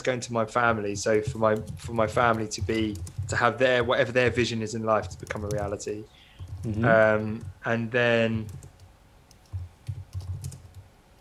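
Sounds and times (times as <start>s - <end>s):
speech: 0.0s - 8.7s
typing on a computer keyboard: 1.2s - 3.8s, 5.0s - 5.8s, 6.4s - 6.7s, 8.4s - 10.9s.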